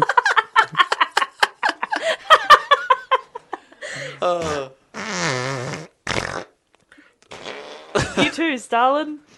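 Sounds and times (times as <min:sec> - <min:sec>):
laughter: 0:00.0 - 0:04.0
fart noises: 0:04.3 - 0:06.6, 0:07.2 - 0:08.2
speech: 0:08.6 - 0:09.3.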